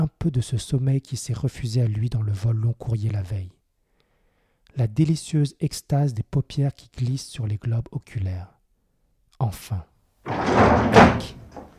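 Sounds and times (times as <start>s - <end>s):
speech: 0.0s - 3.6s, 4.8s - 8.6s, 9.4s - 11.4s
train carriage door slamming violently: 10.3s - 11.7s.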